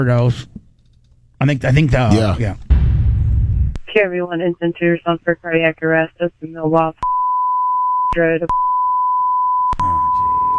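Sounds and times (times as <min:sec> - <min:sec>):
speech: 0:00.0 - 0:00.6, 0:01.4 - 0:02.6, 0:03.9 - 0:07.0, 0:08.1 - 0:08.6
electronic censor tone over a 911 call: 0:07.0 - 0:10.5.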